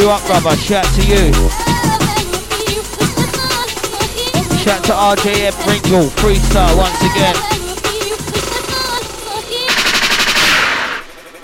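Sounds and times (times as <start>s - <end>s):
speech: 0.0s - 1.6s, 4.6s - 7.6s
pumping music track: 0.0s - 11.4s
DJ gunshot sound effect with rattling shots: 9.7s - 11.1s.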